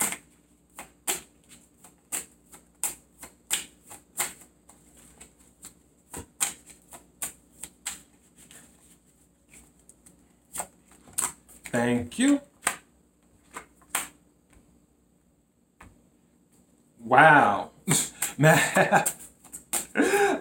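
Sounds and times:
tarot cards being shuffled and drawn: 0:00.0 - 0:12.8, 0:13.4 - 0:14.2, 0:19.0 - 0:19.9
speech: 0:11.8 - 0:12.5, 0:18.4 - 0:19.2.

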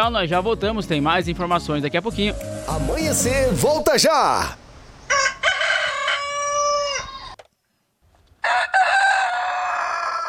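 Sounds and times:
speech: 0:00.0 - 0:05.3
rooster crowing: 0:05.1 - 0:07.4, 0:08.4 - 0:10.2.

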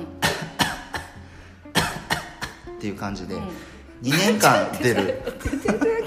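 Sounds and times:
person reenacting a dry hacking cough: 0:00.2 - 0:02.7
speech: 0:02.8 - 0:06.0
laughter: 0:04.1 - 0:06.0.

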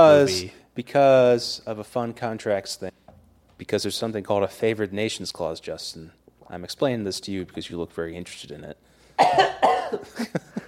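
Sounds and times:
speech: 0:00.0 - 0:03.0, 0:03.6 - 0:10.6
person coughing: 0:09.2 - 0:10.6.

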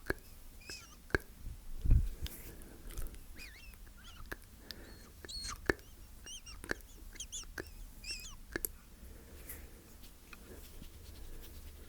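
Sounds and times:
short squeaky mouth chirps: 0:00.0 - 0:01.2, 0:03.3 - 0:08.6
wet mouth clicks, smacks and soft tongue noises: 0:00.0 - 0:01.3, 0:02.9 - 0:07.8, 0:08.4 - 0:08.8.

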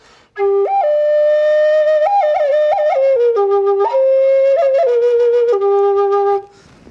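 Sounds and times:
G flute playing a short melody: 0:00.3 - 0:06.7.

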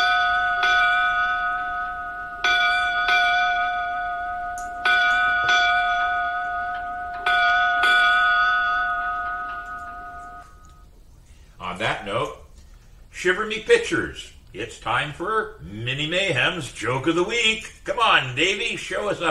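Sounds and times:
ship's bell ringing eight bells: 0:00.0 - 0:10.9
speech: 0:13.2 - 0:19.2.

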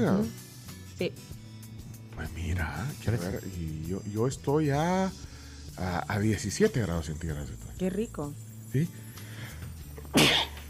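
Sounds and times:
speech: 0:00.0 - 0:00.4, 0:01.0 - 0:01.4, 0:02.2 - 0:09.0
person sneezing: 0:10.1 - 0:10.6.

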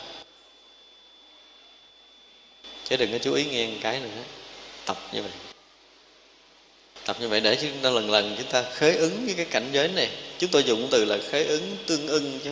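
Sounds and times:
electric fan whirring hum: 0:00.0 - 0:12.5
thin high whine: 0:00.0 - 0:12.5
speech: 0:02.9 - 0:05.5, 0:07.1 - 0:12.5.

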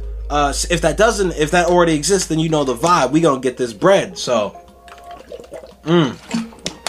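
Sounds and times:
speech: 0:00.3 - 0:04.6, 0:05.8 - 0:06.4
person drinking water: 0:04.8 - 0:06.8
wet sips and gulps: 0:04.8 - 0:06.8.

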